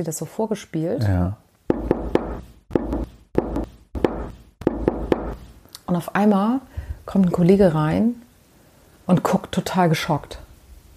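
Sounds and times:
speech: 0.0 - 1.8, 5.9 - 8.2, 9.1 - 10.4
knocking: 1.7 - 5.5.

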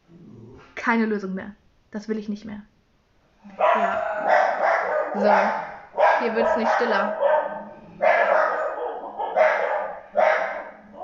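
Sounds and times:
speech: 0.8 - 2.7, 3.4 - 3.6, 5.2 - 7.2
dogs barking: 3.5 - 11.0.

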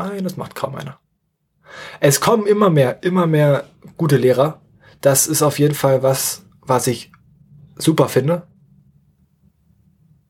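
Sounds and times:
speech: 0.0 - 1.0, 1.7 - 7.2, 7.8 - 8.5
car engine rumble passing outside: 3.4 - 10.2.

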